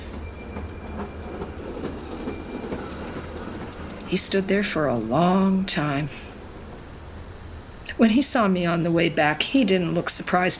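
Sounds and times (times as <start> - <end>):
rhythmic rail clacks: 0.0 - 5.1
train pulling away on the rails: 0.0 - 10.5
speech: 4.1 - 6.3, 8.0 - 10.5.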